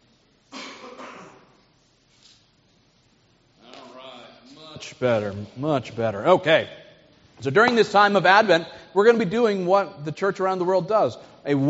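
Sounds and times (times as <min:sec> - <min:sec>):
harsh coughs from one person: 0:00.5 - 0:01.6
speech: 0:04.8 - 0:06.8, 0:07.4 - 0:11.6.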